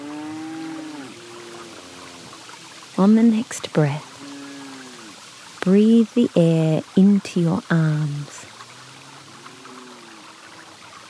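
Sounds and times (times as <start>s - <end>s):
cow mooing in the distance: 0.0s - 2.3s, 4.1s - 5.2s, 8.8s - 10.8s
steady rush of running water: 0.0s - 11.0s
speech: 3.0s - 4.1s, 5.6s - 8.4s.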